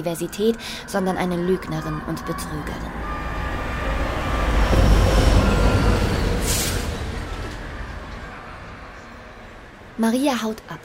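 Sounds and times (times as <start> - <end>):
speech: 0.0 - 3.2, 10.0 - 10.8
train rumbling through a railway station: 0.0 - 10.8
train air brakes hissing: 4.5 - 7.8.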